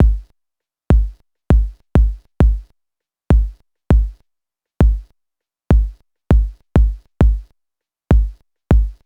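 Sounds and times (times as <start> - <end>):
bouncy kick drum loop: 0.0 - 0.3, 0.9 - 2.7, 3.3 - 4.2, 4.8 - 5.1, 5.7 - 7.5, 8.1 - 9.0.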